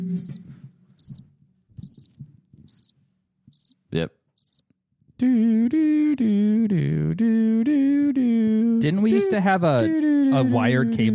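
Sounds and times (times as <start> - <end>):
crickets chirping in high buzzy bursts: 0.2 - 0.4, 1.0 - 1.2, 1.8 - 2.1, 2.7 - 2.9, 3.5 - 3.8, 4.4 - 4.6, 5.2 - 5.4, 6.1 - 6.3
speech: 3.9 - 4.2, 5.2 - 11.1.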